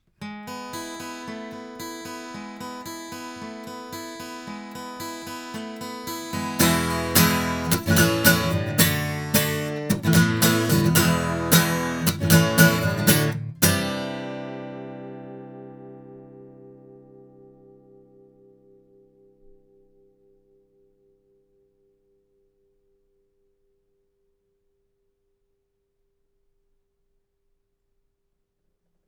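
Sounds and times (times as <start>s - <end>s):
guitar: 0.0s - 22.2s.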